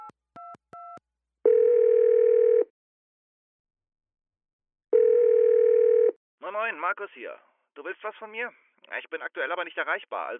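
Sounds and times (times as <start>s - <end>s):
telephone keypad beeps dialing a number: 0.0s - 1.0s
telephone ringing tone: 1.5s - 2.7s, 4.9s - 6.2s
speech: 6.5s - 10.3s.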